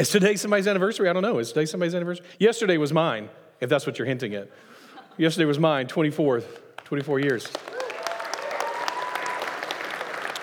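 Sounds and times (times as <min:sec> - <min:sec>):
speech: 0:00.0 - 0:07.7
room full of people clapping: 0:06.5 - 0:10.4.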